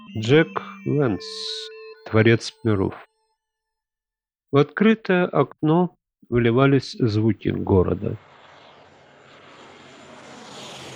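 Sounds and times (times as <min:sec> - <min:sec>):
speech: 0:00.2 - 0:03.1, 0:04.5 - 0:08.3
passing airplane engine whistling roar: 0:07.9 - 0:10.9.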